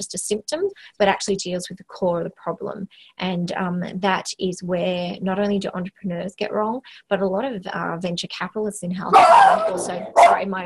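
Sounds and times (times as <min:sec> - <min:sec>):
speech: 0:00.0 - 0:10.6
dog barking: 0:09.1 - 0:10.5.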